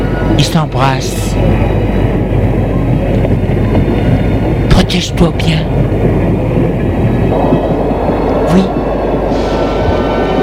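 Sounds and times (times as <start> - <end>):
train rumbling at a railway station: 0.0 - 10.4
speech: 0.4 - 1.9, 4.9 - 6.4, 8.5 - 8.8.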